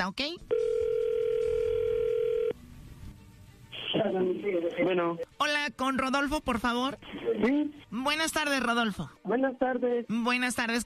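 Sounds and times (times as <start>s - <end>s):
speech: 0.0s - 0.5s, 3.9s - 10.8s
telephone line tone as a call connects: 0.5s - 2.6s.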